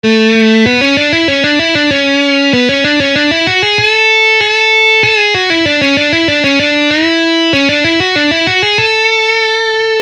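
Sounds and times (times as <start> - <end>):
guitar scale exercises: 0.0 - 10.0.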